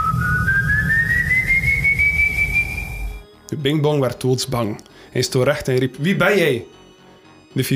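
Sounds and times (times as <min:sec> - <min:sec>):
low rumble: 0:00.0 - 0:03.2
person in a canoe whistling a long rising note: 0:00.0 - 0:03.2
speech: 0:03.5 - 0:06.8, 0:07.6 - 0:07.7.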